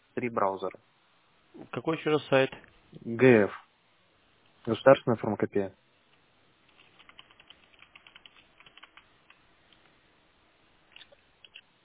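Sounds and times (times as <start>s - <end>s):
speech: 0.2s - 3.6s, 4.6s - 5.8s
typing on a computer keyboard: 6.7s - 9.8s, 10.9s - 11.6s.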